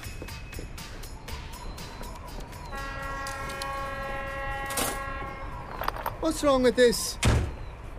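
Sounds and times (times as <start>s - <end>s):
long steady train horn tone: 2.7s - 5.7s
speech: 6.2s - 7.3s.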